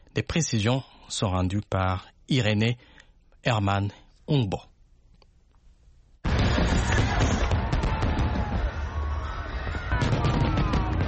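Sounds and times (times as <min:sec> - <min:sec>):
speech: 0:00.2 - 0:04.7
fireworks exploding: 0:06.2 - 0:11.0
faint crowd noise: 0:06.4 - 0:11.0.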